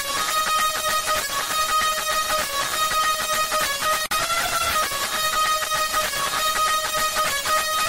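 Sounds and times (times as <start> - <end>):
loud Indian music: 0.0 - 7.8.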